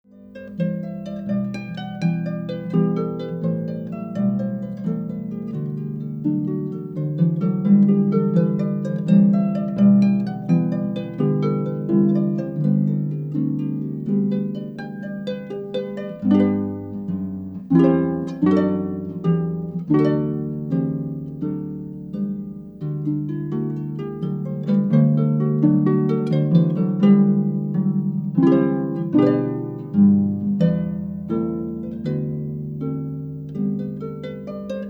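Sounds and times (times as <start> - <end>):
solo harp: 0.0 - 34.8.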